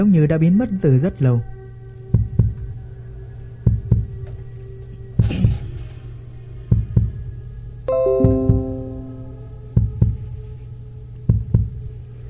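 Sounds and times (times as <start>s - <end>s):
speech: 0.0s - 1.5s
slow heartbeat of paired lub-dub thumps: 2.1s - 2.7s, 3.7s - 4.2s, 5.2s - 5.7s, 6.7s - 7.3s, 8.2s - 8.8s, 9.7s - 10.4s, 11.3s - 11.8s.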